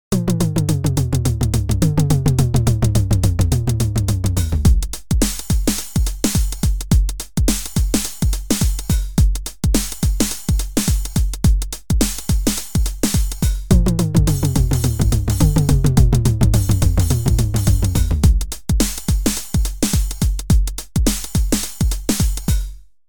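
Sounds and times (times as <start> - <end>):
slow drum machine beat: 0.1 - 22.8.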